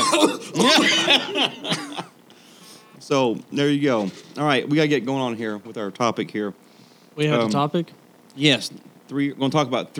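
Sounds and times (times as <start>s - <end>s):
person coughing: 0.0s - 2.2s
throaty laugh-like vocal sounds: 0.0s - 2.2s
speech: 3.1s - 6.6s, 7.2s - 9.9s.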